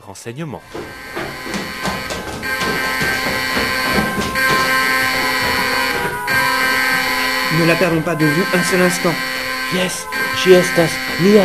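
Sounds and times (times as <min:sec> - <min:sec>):
speech: 0:00.1 - 0:02.1, 0:07.6 - 0:11.4
alarm with piercing electronic tone ringing: 0:00.6 - 0:11.4.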